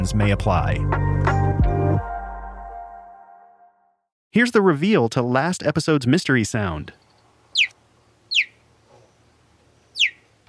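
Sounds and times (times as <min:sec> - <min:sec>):
speech: 0:00.0 - 0:01.4, 0:04.4 - 0:07.0
cheetah chirping: 0:07.0 - 0:10.4.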